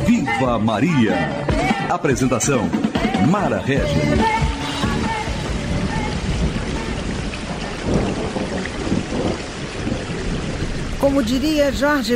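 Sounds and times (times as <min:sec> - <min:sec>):
heavy rain pouring: 0:00.0 - 0:12.1
speech: 0:00.4 - 0:04.6, 0:11.0 - 0:12.1
deep rumbles of thunder: 0:03.8 - 0:12.1.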